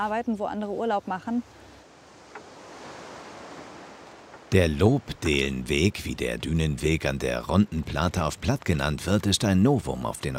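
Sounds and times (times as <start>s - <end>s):
speech: 0.0s - 1.6s, 4.5s - 10.3s
sea waves rushing on the coast of an East Frisian island: 1.4s - 8.2s.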